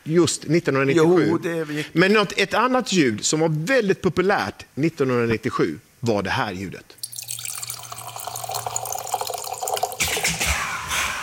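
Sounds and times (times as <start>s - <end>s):
speech: 0.0s - 7.0s
wine pouring from the tap of a bag-in-box: 7.0s - 10.2s.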